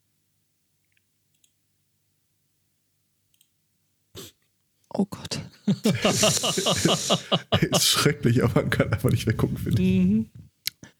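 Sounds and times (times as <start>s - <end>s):
computer mouse clicking on a link: 0.9s - 1.6s, 3.3s - 3.5s
speech: 5.0s - 10.4s
laughter: 5.3s - 10.0s.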